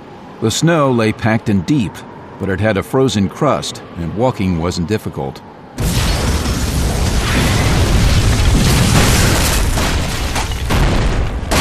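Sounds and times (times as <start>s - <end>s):
speech: 0.4s - 5.9s
loud deep explosion: 5.8s - 11.5s.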